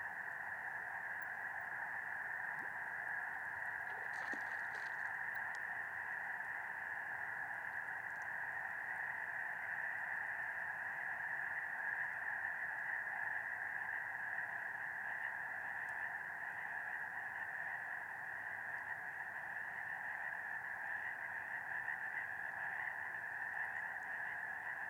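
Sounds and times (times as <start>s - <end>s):
chorus of frogs and toads across Medicine Lake in California: 0.0s - 24.8s.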